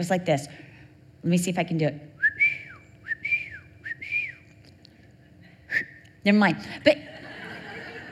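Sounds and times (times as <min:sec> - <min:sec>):
speech: 0:00.0 - 0:02.2, 0:06.2 - 0:07.2
person whistling a signal call calling children home for dinner: 0:02.2 - 0:04.5
laughter: 0:06.9 - 0:08.0.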